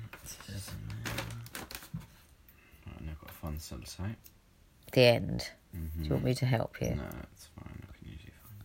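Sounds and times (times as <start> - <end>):
paper rustling: 0.1 - 2.2
speech: 3.7 - 4.4, 4.9 - 7.7.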